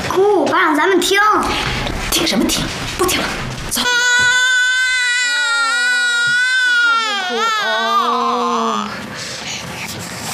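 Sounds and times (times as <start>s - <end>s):
speech: 0.2s - 4.0s
baby crying: 3.8s - 9.0s.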